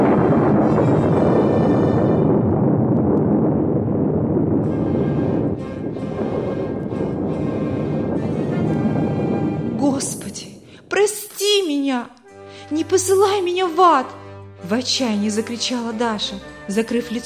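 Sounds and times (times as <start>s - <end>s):
massive explosion of a burning airplane crashing: 0.0s - 11.4s
crackling of a burning airplane: 0.0s - 12.6s
speech: 13.0s - 17.2s.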